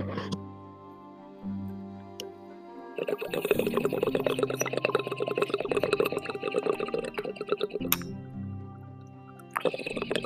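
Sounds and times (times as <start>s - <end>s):
low tonal hum: 0.0s - 10.2s
water bubbling in a dab rig as wax is taken: 3.0s - 8.1s, 9.5s - 10.2s.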